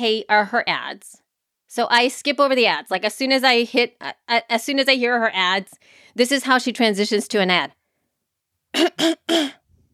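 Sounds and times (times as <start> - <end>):
speech: 0.0 - 7.8, 8.7 - 9.6
faint trailing breath: 5.8 - 6.2
voice imitating a woman's throat clearing: 8.7 - 9.7.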